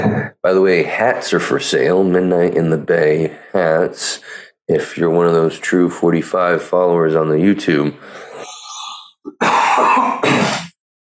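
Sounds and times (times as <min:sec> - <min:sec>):
speech: 0:00.0 - 0:08.5
person clearing throat: 0:09.3 - 0:10.8
person coughing in harsh raspy bursts: 0:09.3 - 0:10.8.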